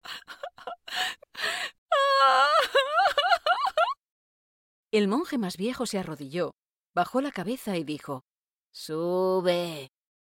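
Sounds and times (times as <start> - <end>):
woman sobbing and wailing: 0.0 - 4.0
speech: 4.9 - 10.0.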